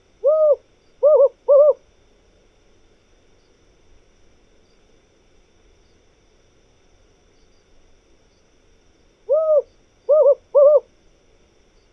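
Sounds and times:
desert owl hooting: 0.0 - 1.8, 9.3 - 10.9
faint low hum: 0.0 - 11.9.

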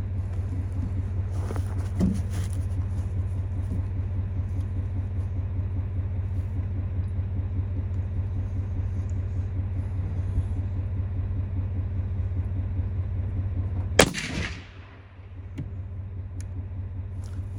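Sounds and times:
steady low rumble: 0.0 - 17.5
new Tikka rifle shot while zeroing at 100 yards: 14.0 - 15.2.

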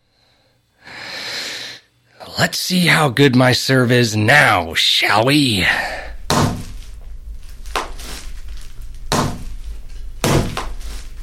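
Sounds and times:
person taking a deep breath: 0.0 - 1.9, 5.6 - 6.3
speech: 2.3 - 6.0.

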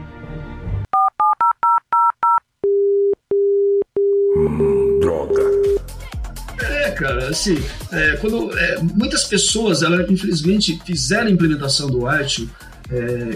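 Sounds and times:
telephone keypad dialing two-tone beeps: 1.0 - 4.3
telephone ringing tones as a call is placed: 1.0 - 5.8
speech: 7.0 - 13.3.

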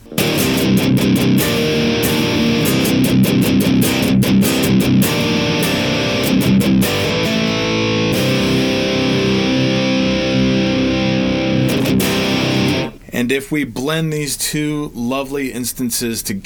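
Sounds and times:
heavily distorted electric guitar riff through a pedal, amp and amp simulator: 0.0 - 13.1
speech: 13.3 - 16.4.

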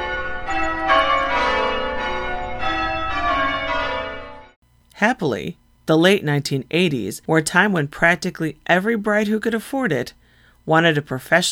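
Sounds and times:
peal of wedding church bells: 0.0 - 4.6
speech: 5.0 - 11.5.

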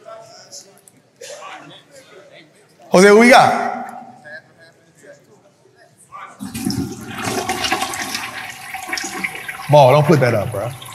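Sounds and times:
faint murmur: 0.0 - 6.9
speech: 2.9 - 3.6, 9.7 - 10.8
toilet flushing: 6.4 - 10.9.

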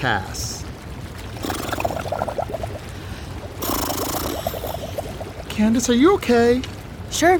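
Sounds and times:
speech: 0.0 - 0.6, 5.6 - 7.3
person blowing air into jacuzzi water on a boat: 1.2 - 5.6.

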